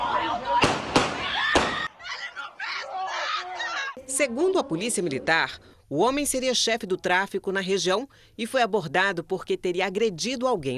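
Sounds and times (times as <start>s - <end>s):
people calling out with raised voices: 0.0s - 5.5s
gunshots on a street: 0.6s - 1.9s
speech: 4.2s - 10.7s.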